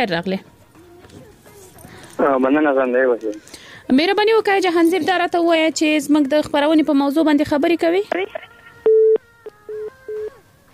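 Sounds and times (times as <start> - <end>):
speech: 0.0 - 0.6, 2.2 - 8.5
telephone busy tone after a call is cut off: 8.9 - 10.4.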